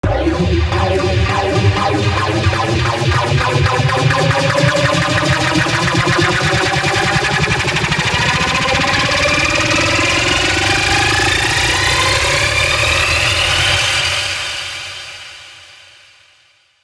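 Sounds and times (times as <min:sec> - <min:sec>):
rising synth riser sound effect: 0:00.0 - 0:13.9.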